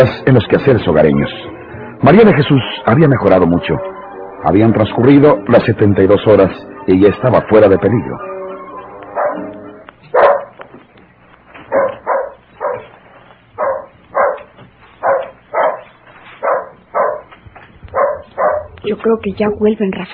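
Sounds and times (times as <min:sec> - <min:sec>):
speech: 0:00.0 - 0:08.3, 0:19.1 - 0:20.1
faint low hum: 0:00.0 - 0:20.1
dog barking: 0:09.2 - 0:09.5, 0:10.1 - 0:10.6, 0:11.7 - 0:13.0, 0:13.6 - 0:17.3, 0:17.9 - 0:18.8.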